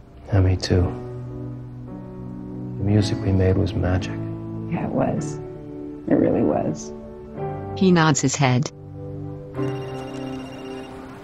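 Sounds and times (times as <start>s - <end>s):
speech: 0.4s - 1.0s, 2.9s - 5.4s, 6.1s - 7.0s, 7.8s - 8.8s, 9.6s - 10.2s
telephone ringing with a bright electronic tone: 9.6s - 11.2s.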